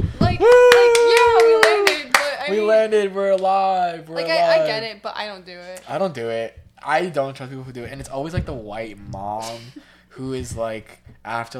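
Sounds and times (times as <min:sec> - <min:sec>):
sharp hand claps in mock applause: 0:00.4 - 0:02.4
speech: 0:02.8 - 0:11.5.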